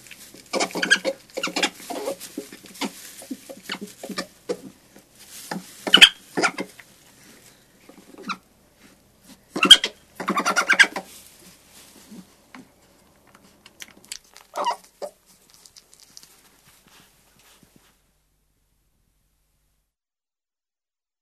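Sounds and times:
European badger yelping and chattering: 0.5 - 2.1, 5.9 - 6.7, 9.5 - 11.0, 13.9 - 16.2.

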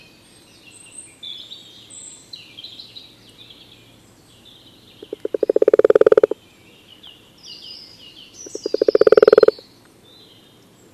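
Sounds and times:
common toad call speeding up into a dense rattling trill: 5.0 - 6.4, 8.4 - 9.6.

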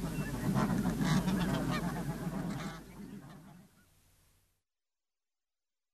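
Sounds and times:
snow goose flock calling: 0.0 - 4.0.

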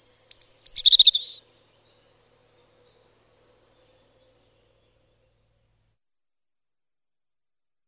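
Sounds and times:
European robin singing: 0.0 - 5.5.

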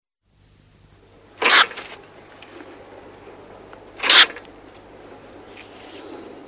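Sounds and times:
stoat making rasping hiss bursts: 1.4 - 1.9, 4.0 - 4.4.

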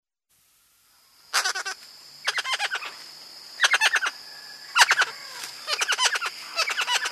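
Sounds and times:
thin insect drone: 0.3 - 7.0
blue bird-of-paradise giving harsh clipped calls: 1.3 - 3.0, 3.6 - 7.0.

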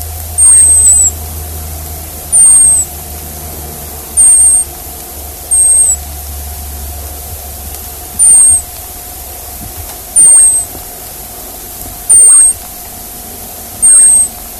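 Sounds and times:
hazel dormouse squeaking: 0.0 - 1.2, 2.3 - 3.0, 4.1 - 4.8, 5.5 - 6.1, 8.1 - 8.9, 10.1 - 11.0, 12.0 - 12.9, 13.8 - 14.4
constant humming tone: 0.0 - 14.5.

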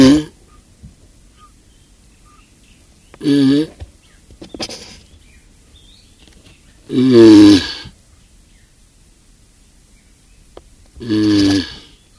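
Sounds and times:
Galapagos tortoise giving loud hoarse wavering groans: 0.0 - 0.6, 3.2 - 3.8, 6.8 - 8.0, 11.0 - 12.1
speech: 3.2 - 3.8, 7.0 - 7.4.

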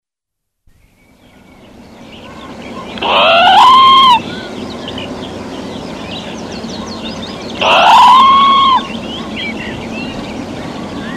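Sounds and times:
birds twittering: 0.7 - 11.1
Red squirrel calling: 2.0 - 10.2.

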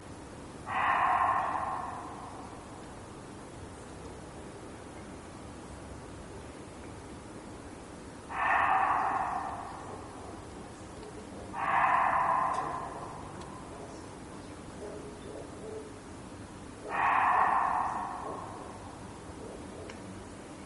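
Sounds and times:
quiet hiss: 0.0 - 20.6
Reeves's muntjac barking: 0.6 - 3.0, 8.3 - 14.2, 16.8 - 20.0.

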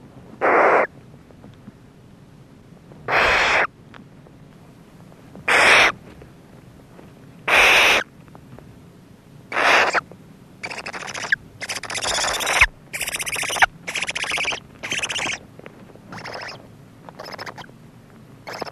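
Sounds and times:
barn owl screeching: 0.4 - 0.9, 3.1 - 3.7, 5.5 - 6.0, 7.5 - 8.0, 9.5 - 10.0, 10.6 - 15.4, 16.1 - 17.7, 18.4 - 18.7.

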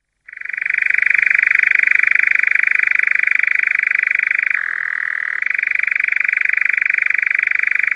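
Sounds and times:
European nightjar churring: 0.3 - 7.9.

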